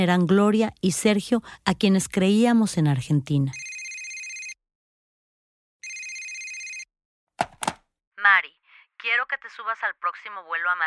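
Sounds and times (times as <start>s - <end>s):
speech: 0.0s - 3.6s, 8.4s - 10.8s
telephone ringing with bright high electronic bell-like ringing: 3.5s - 4.6s, 5.8s - 7.8s.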